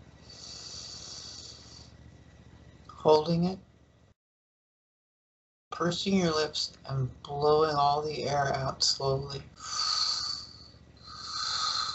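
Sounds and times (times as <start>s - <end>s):
long airy inhale through the nose: 0.2s - 2.0s, 9.6s - 11.9s
speech: 3.0s - 3.7s, 5.8s - 9.8s.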